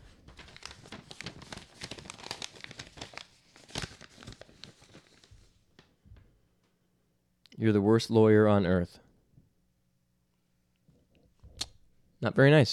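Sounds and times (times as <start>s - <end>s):
paper crinkling as a folded paper airplane is unfolded: 0.0s - 5.9s
speech: 7.6s - 9.0s, 12.2s - 12.7s.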